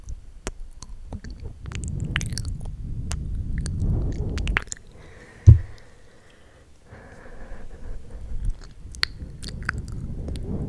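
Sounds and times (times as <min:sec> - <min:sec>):
wet mouth sounds of lipgloss being applied: 0:00.0 - 0:04.9, 0:08.4 - 0:10.6
soft low rustling: 0:00.0 - 0:06.1, 0:06.9 - 0:10.6
breathing: 0:04.9 - 0:10.6.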